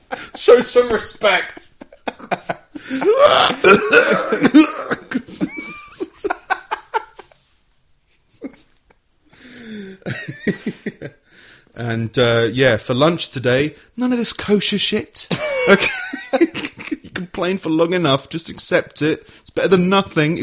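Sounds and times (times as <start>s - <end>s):
audience laughter: 0.0s - 7.4s, 8.1s - 9.0s, 10.0s - 11.2s, 15.3s - 17.1s
speech: 0.4s - 1.7s, 2.3s - 5.5s, 11.8s - 20.4s
audience members coughing: 2.8s - 5.7s.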